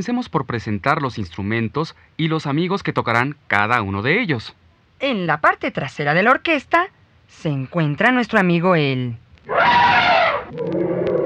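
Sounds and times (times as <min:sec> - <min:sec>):
speech: 0:00.0 - 0:09.8
elephant trumpeting: 0:09.5 - 0:11.2
faint clicks: 0:10.5 - 0:11.2.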